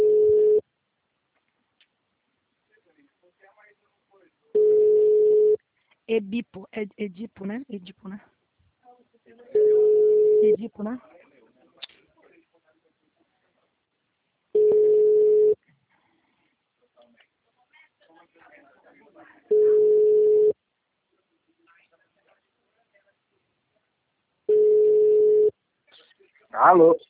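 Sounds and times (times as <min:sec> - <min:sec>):
telephone tone after a dropped call: 0:00.0 - 0:00.6, 0:04.6 - 0:05.6, 0:09.6 - 0:10.6, 0:14.6 - 0:15.6, 0:19.5 - 0:20.5, 0:24.5 - 0:25.5
faint noise: 0:00.0 - 0:27.0
speech: 0:06.1 - 0:08.4, 0:10.4 - 0:11.1, 0:26.5 - 0:27.0.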